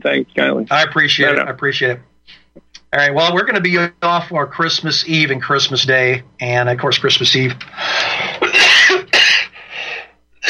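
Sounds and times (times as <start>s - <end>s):
speech: 0.0s - 8.7s
harsh coughing: 8.2s - 9.6s.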